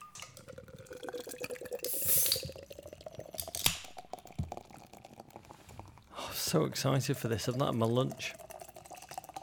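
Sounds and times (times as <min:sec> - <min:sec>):
Guinness stout glugging and gurgling into a glass: 0:00.0 - 0:09.4
can of Guinness stout popping open with fizzing hiss: 0:01.8 - 0:02.6, 0:03.4 - 0:04.0
speech: 0:06.4 - 0:08.4.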